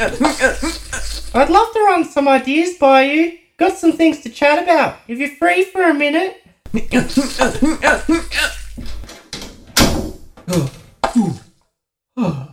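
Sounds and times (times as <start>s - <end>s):
giggly vocal sounds: 0.0s - 1.6s, 6.7s - 8.8s, 10.5s - 11.5s
speech: 0.0s - 8.9s, 10.5s - 11.4s, 12.2s - 12.5s
bathroom stall door slamming shut: 8.7s - 10.8s.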